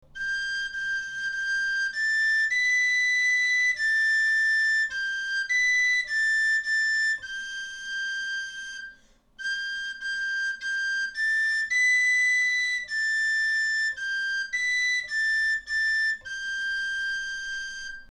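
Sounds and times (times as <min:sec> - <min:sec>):
galoubet pipe playing a folk tune: 0:00.0 - 0:18.1.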